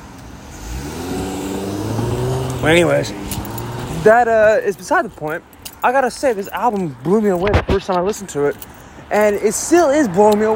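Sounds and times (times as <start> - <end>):
car engine accelerating past in road traffic: 0.5 - 4.1
speech: 2.6 - 3.4, 4.0 - 10.5.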